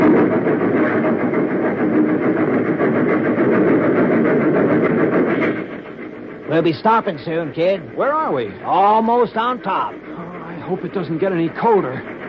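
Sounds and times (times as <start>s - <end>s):
train engine roaring past into a snow shed: 0.0s - 12.2s
speech: 6.6s - 10.0s, 10.7s - 12.1s.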